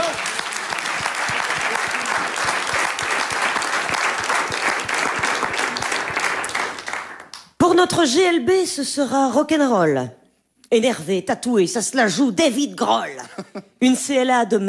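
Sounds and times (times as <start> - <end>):
sizable audience applauding: 0.0 - 7.4
speech: 7.8 - 14.6.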